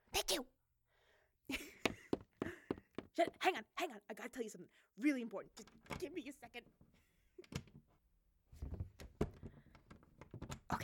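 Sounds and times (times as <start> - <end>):
speech: 0.3 - 0.5, 3.2 - 7.0
key jiggling and clicking in a door lock: 5.5 - 6.2, 7.4 - 7.9, 9.0 - 10.7.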